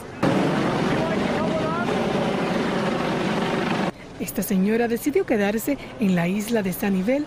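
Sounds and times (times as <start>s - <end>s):
US Coast Guard helicopter rotor and engine roar during rescue hoist: 0.1s - 4.0s
speech: 4.4s - 7.2s.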